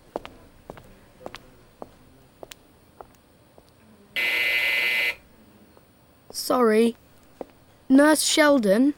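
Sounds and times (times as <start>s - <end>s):
nurse call buzzer giving a harsh electronic buzz: 4.2s - 5.3s
speech: 6.5s - 7.0s, 7.9s - 8.9s.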